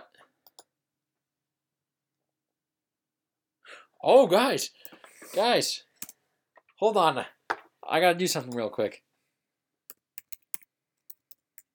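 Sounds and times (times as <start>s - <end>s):
speech: 3.7s - 5.9s, 6.8s - 9.0s
keys clicking on a computer keyboard: 9.9s - 11.7s.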